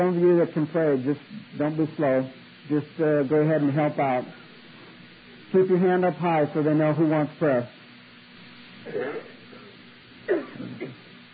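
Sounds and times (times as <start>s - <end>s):
speech: 0.0s - 4.4s, 5.5s - 7.8s, 8.8s - 9.3s, 10.3s - 11.0s
person coughing in a large room: 8.9s - 9.7s, 10.3s - 11.0s.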